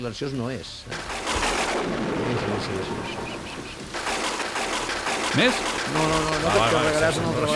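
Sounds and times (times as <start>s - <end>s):
speech: 0.0s - 3.8s, 5.3s - 7.5s
rumbling thunder sound effect: 0.9s - 7.3s
deep boom: 1.0s - 6.6s
faint chirping tones: 2.2s - 6.0s.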